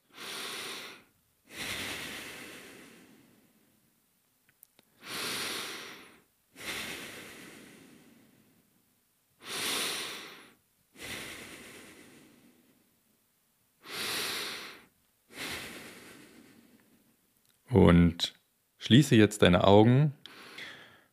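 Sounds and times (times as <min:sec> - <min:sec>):
slow deep calm breathing: 0:00.0 - 0:03.9, 0:04.9 - 0:08.8, 0:09.4 - 0:13.0, 0:13.8 - 0:17.2, 0:20.2 - 0:21.1
speech: 0:17.8 - 0:20.2.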